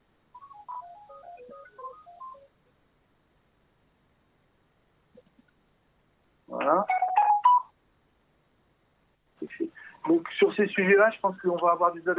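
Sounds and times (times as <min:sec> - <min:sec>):
telephone ringing with bright electronic beeps: 0:00.4 - 0:02.5, 0:06.9 - 0:07.7
speech: 0:10.6 - 0:12.1.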